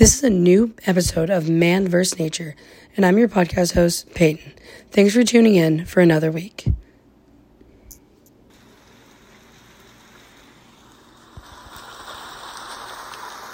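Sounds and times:
speech: 0:00.0 - 0:06.8
steady rain: 0:08.5 - 0:13.5.

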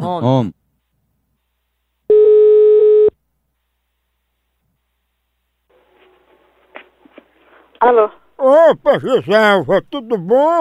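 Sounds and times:
speech: 0:00.1 - 0:00.6, 0:07.8 - 0:10.5
telephone ringing tone on an outgoing call: 0:02.1 - 0:03.1.

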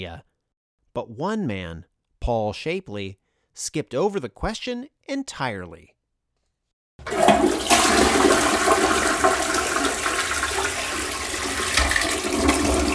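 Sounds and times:
speech: 0:00.0 - 0:00.3, 0:01.0 - 0:06.0
toilet flushing: 0:07.0 - 0:12.9.

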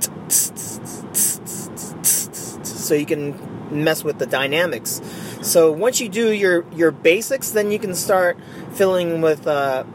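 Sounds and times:
voice beatboxing hi-hats: 0:00.0 - 0:02.9
speech: 0:00.3 - 0:00.6, 0:02.9 - 0:09.9.

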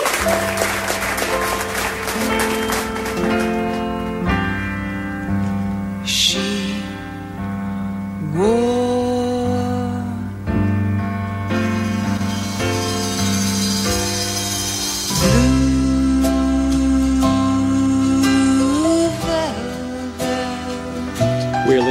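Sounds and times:
full lush instrumental backing: 0:00.1 - 0:21.8
woman singing a slow ballad: 0:06.1 - 0:07.4, 0:08.2 - 0:10.7, 0:15.1 - 0:21.5.

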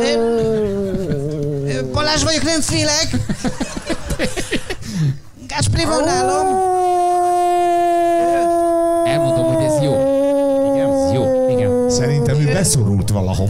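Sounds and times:
laughter: 0:00.0 - 0:01.9, 0:03.0 - 0:05.1
wolf howling: 0:00.0 - 0:01.9, 0:05.8 - 0:12.9
speech: 0:01.8 - 0:04.4, 0:05.7 - 0:06.7, 0:12.6 - 0:13.4.

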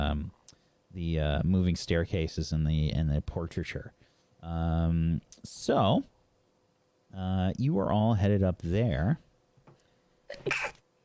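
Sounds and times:
speech: 0:00.1 - 0:06.1, 0:07.1 - 0:09.2, 0:10.3 - 0:10.8
sneeze: 0:10.3 - 0:10.8.

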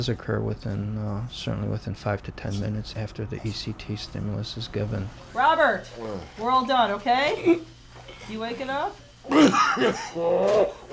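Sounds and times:
speech: 0:00.0 - 0:10.9
patient coughing after anesthesia: 0:09.3 - 0:10.2.

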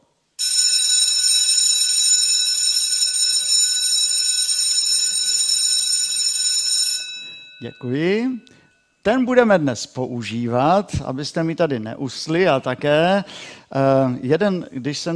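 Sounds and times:
loud electric school bell ringing during a sermon: 0:00.4 - 0:09.0
speech: 0:07.6 - 0:15.1.

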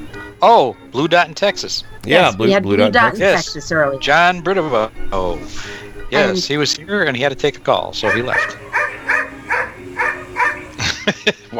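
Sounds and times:
speech: 0:00.1 - 0:08.6
laughter: 0:02.0 - 0:03.6, 0:06.2 - 0:06.9, 0:08.0 - 0:08.6, 0:10.6 - 0:11.5
dog barking: 0:08.0 - 0:10.8.

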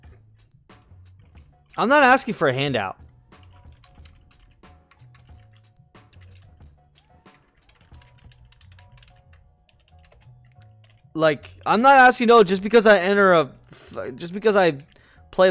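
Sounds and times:
speech: 0:01.8 - 0:03.0, 0:11.2 - 0:15.5
typing on a computer keyboard: 0:03.4 - 0:11.6.

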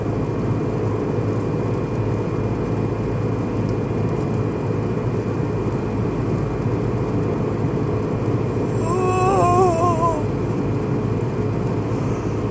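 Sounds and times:
steady low road roar on a highway: 0:00.0 - 0:12.4.

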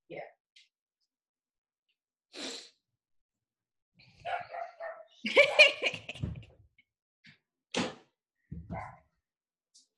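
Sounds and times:
dog barking and yipping: 0:04.2 - 0:05.8, 0:08.7 - 0:09.0
speech: 0:05.2 - 0:05.8
laughter: 0:05.2 - 0:06.5.

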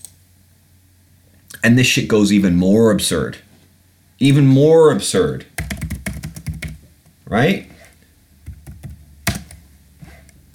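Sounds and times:
speech: 0:01.5 - 0:03.5, 0:04.2 - 0:05.9, 0:07.3 - 0:07.7
computer keyboard keys clicking while typing a web search: 0:05.6 - 0:06.8, 0:08.5 - 0:09.6.

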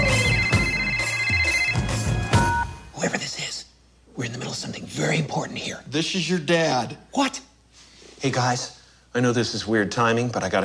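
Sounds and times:
telephone ringing in short electronic bursts: 0:00.0 - 0:02.8
speech: 0:05.0 - 0:07.5, 0:08.2 - 0:10.6.

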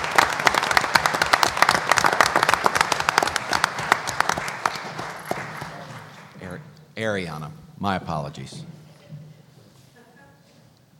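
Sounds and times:
audience applause: 0:00.0 - 0:06.6
speech: 0:07.0 - 0:08.8.

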